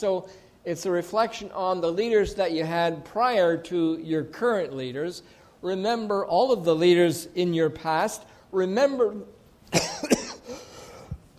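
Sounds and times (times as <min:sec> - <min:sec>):
speech: 0:00.0 - 0:10.2
person coughing: 0:09.7 - 0:11.3.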